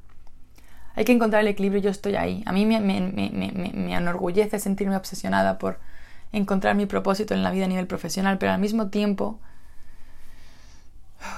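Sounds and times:
speech: 1.0 - 9.5
person's sharp intake of breath for air: 9.4 - 11.3.

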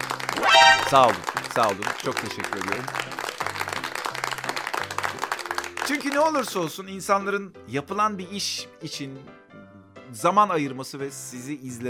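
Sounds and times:
crowd applause: 0.0 - 5.8
low repeating musical bass line: 0.4 - 1.1
speech: 0.9 - 3.2, 5.9 - 9.4, 10.1 - 11.8.

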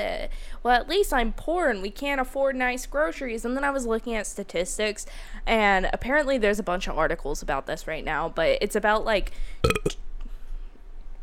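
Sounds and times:
speech: 0.0 - 10.0
short loud throaty burp: 9.6 - 10.0.

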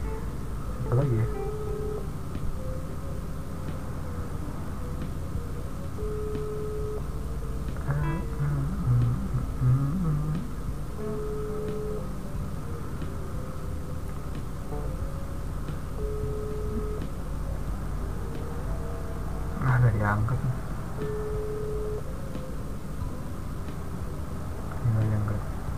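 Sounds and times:
faint hiss of phone line noise: 0.0 - 25.7
speech: 0.9 - 1.5
phone call ringback tone electronic buzz: 0.9 - 2.1, 6.0 - 7.0, 11.1 - 12.1, 16.0 - 17.0, 21.0 - 22.1.

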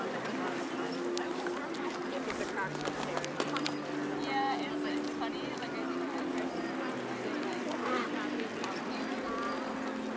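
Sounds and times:
dense murmur of hundreds of people's voices in a wide open park in Berlin: 0.0 - 10.1.

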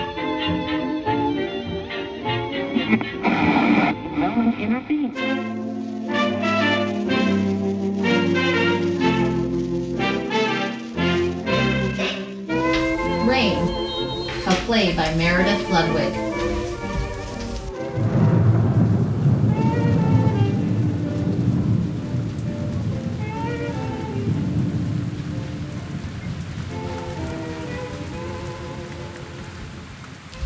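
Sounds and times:
steady rain pouring down: 0.0 - 30.4
speech: 2.9 - 3.2, 4.6 - 6.6
faint tonal sounds: 12.8 - 17.7.

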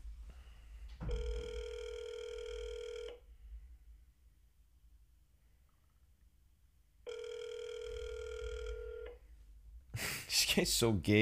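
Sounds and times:
electronic ringback tones of a phone call being placed: 1.1 - 3.2, 7.1 - 9.2
speech: 10.6 - 11.2.

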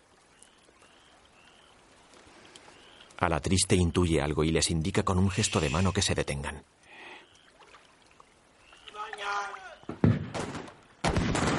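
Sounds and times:
speech: 3.2 - 6.8
arquebus gunshots in fog: 9.9 - 11.5.

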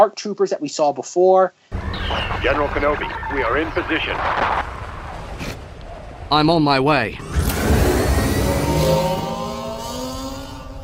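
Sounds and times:
speech: 0.0 - 4.6, 6.3 - 7.4
animated sci-fi speeder bike engine revving: 7.2 - 10.8.

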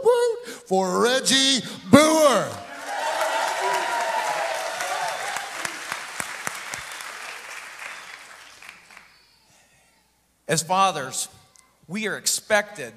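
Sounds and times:
speech: 0.7 - 2.7, 10.5 - 12.9
crowd cheering with whoops and shouts: 2.0 - 9.4
dense clapping: 2.6 - 9.1.

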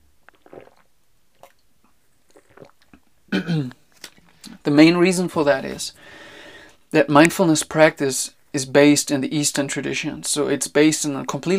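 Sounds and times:
soft slurping of tea: 0.2 - 3.1
person sipping tea: 0.2 - 4.6
speech: 3.4 - 3.8, 4.6 - 6.2, 6.9 - 11.5
satisfied exhale or throaty sound: 6.0 - 6.8.

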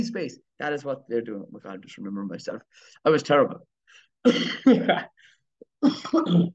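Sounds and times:
speech: 0.0 - 6.5
person coughing harshly: 4.2 - 5.1, 5.8 - 6.5.

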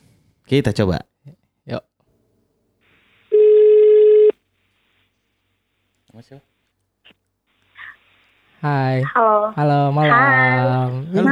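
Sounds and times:
speech: 0.5 - 1.1, 1.7 - 1.9, 6.2 - 6.5, 8.6 - 11.3
outgoing phone call ringback beep: 3.3 - 4.4.

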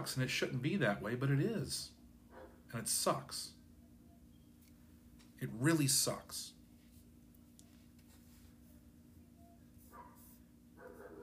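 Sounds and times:
speech: 0.0 - 2.0, 2.7 - 3.6, 5.4 - 6.6
low background hum: 0.0 - 11.2
dog barking: 2.3 - 2.6, 9.9 - 11.2.

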